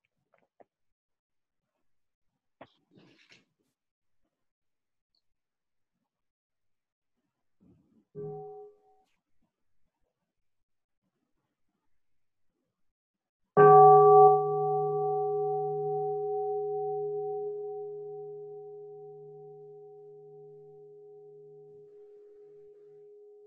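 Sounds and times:
deep bell strike ringing: 0:13.6 - 0:23.4.

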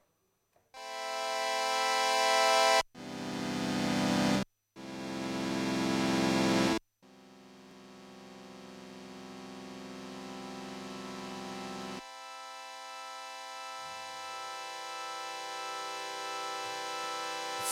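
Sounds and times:
bright buzzy synthesizer with long slow attack swell: 0:00.8 - 0:17.7.

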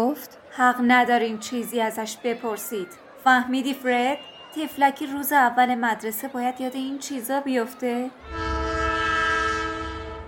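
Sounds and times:
speech: 0:00.0 - 0:08.4
train whistle: 0:08.2 - 0:10.2.

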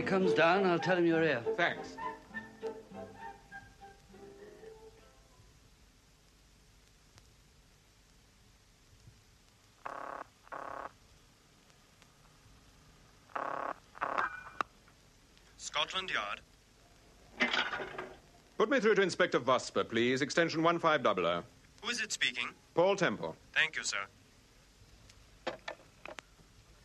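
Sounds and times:
speech: 0:00.0 - 0:02.1, 0:16.0 - 0:16.5, 0:17.8 - 0:24.2
telephone being dialed in a phone box in a corridor: 0:09.9 - 0:10.9, 0:13.4 - 0:14.6.

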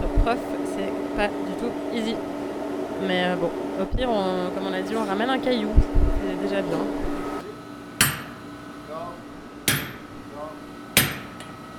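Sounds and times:
low steady hum: 0:00.0 - 0:11.7
speech: 0:00.3 - 0:02.4, 0:03.0 - 0:07.1
hammer striking another hammer: 0:08.0 - 0:08.5, 0:09.6 - 0:10.2, 0:11.0 - 0:11.6.

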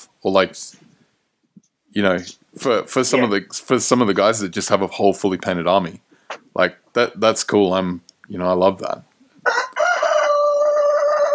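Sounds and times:
speech: 0:00.2 - 0:00.8, 0:02.0 - 0:09.6
rooster crowing: 0:09.4 - 0:11.3.

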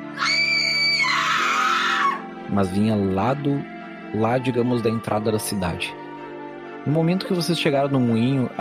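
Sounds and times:
distant scream from the entrance of a town: 0:00.0 - 0:02.3
speech: 0:02.5 - 0:06.0, 0:06.8 - 0:08.5.

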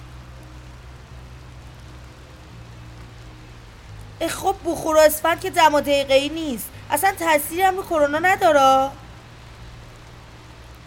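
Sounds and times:
steady rain heard through an open window: 0:00.0 - 0:10.8
speech: 0:04.2 - 0:09.0.

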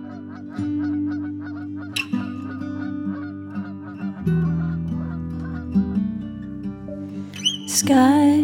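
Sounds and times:
flock of geese honking overhead: 0:00.1 - 0:06.0
speech: 0:07.8 - 0:08.4.

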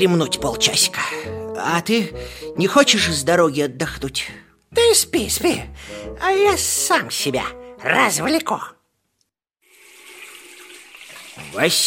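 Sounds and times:
speech: 0:00.0 - 0:08.8, 0:11.4 - 0:11.8
tap water gushing into a sink with floating toy boats: 0:09.6 - 0:11.8.

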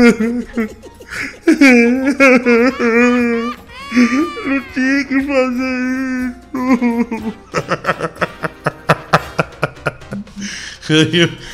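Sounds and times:
voice imitating a man crying: 0:00.0 - 0:07.5
speech: 0:00.0 - 0:08.3, 0:10.4 - 0:11.5
laughter: 0:00.0 - 0:11.5.

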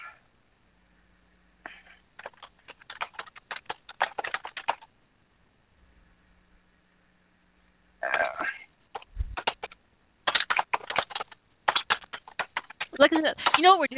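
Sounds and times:
rapid irregular keyboard typing: 0:02.2 - 0:04.9, 0:08.9 - 0:13.7
speech: 0:13.0 - 0:13.9.

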